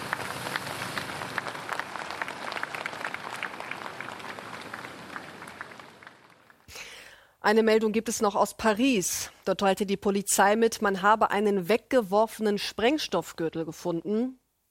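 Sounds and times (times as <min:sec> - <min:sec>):
crowd applauding outdoors along a funeral procession: 0:00.0 - 0:06.7
speech: 0:07.4 - 0:14.4.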